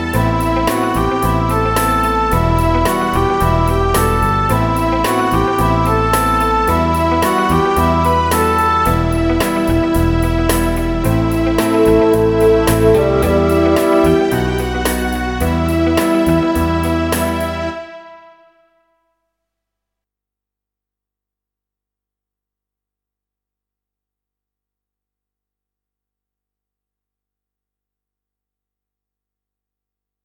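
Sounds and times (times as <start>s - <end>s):
bassoon playing a pop ballad riff: 0.1s - 18.4s
English horn playing a pop ballad riff: 0.3s - 9.9s, 10.8s - 18.7s.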